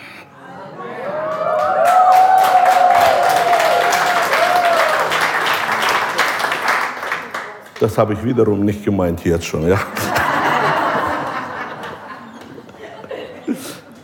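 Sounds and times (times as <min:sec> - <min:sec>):
whoops and cheers: 0:01.0 - 0:05.2
congregation applauding: 0:01.1 - 0:08.2
speech: 0:07.8 - 0:10.0
laughter: 0:09.7 - 0:14.0.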